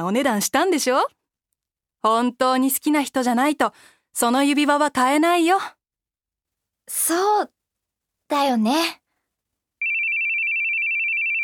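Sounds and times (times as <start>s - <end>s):
speech: 0.0s - 1.2s, 2.0s - 5.8s, 6.9s - 7.6s, 8.3s - 9.0s
phone ringtone with a steady high electronic tone: 9.8s - 11.4s.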